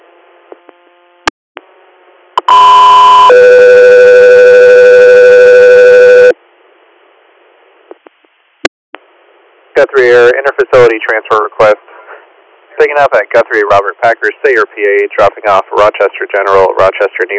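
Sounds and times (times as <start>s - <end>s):
loud two-tone radio dispatch alert: 2.4s - 6.3s
faint radio static: 6.0s - 17.3s
speech: 9.8s - 11.9s, 12.8s - 17.3s.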